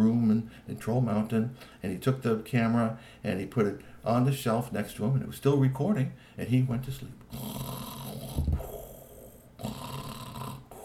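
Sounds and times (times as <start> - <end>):
speech: 0.7 - 7.7
voice imitating a troll's deep rumbling snoring: 7.3 - 10.8.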